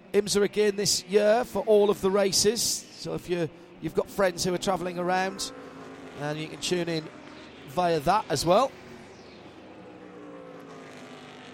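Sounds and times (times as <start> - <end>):
speech: 0.2 - 5.6, 6.2 - 8.8
Acura DPi prototype race car passing on back straight: 3.5 - 11.5.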